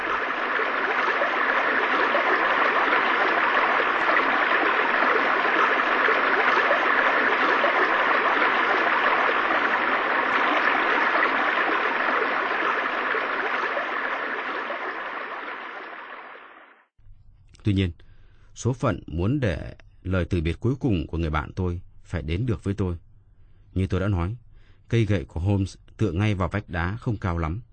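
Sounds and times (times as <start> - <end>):
waterfall roaring in a dense rush of water: 0.0 - 16.6
speech: 17.7 - 18.0, 18.6 - 23.0, 23.7 - 27.7.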